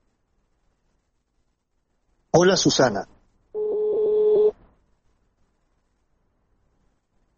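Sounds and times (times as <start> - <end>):
speech: 2.3 - 3.1
telephone ringing tone as a call is dialed: 3.6 - 4.6.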